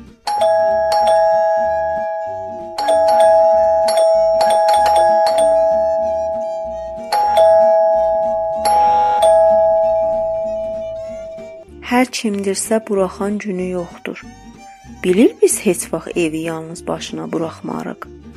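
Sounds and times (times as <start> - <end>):
electric doorbell ringing violently: 0.0 - 11.6
speech: 12.1 - 14.4, 15.0 - 18.1.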